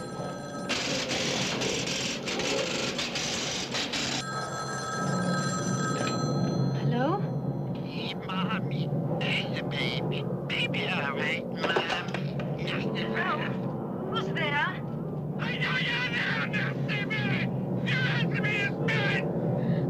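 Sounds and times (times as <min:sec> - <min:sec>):
telephone bell ringing: 0:00.0 - 0:02.2, 0:04.0 - 0:07.8
steady hum: 0:00.0 - 0:19.8.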